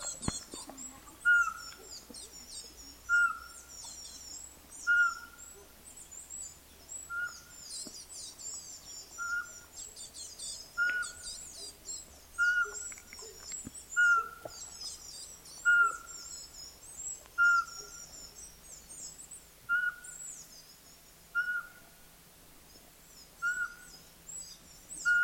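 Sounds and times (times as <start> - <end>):
pygmy owl calling: 0.0 - 2.4, 3.0 - 3.9, 4.8 - 5.7, 7.1 - 7.6, 9.1 - 9.7, 10.7 - 11.8, 12.4 - 14.7, 15.6 - 16.4, 17.4 - 18.4, 19.7 - 20.3, 21.3 - 22.0, 23.4 - 24.0, 25.0 - 25.2.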